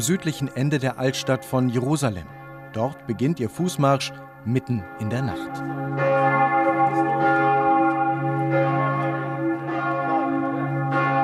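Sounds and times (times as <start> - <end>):
speech: 0.0 - 6.2
abbey church bells pealing: 0.0 - 11.2.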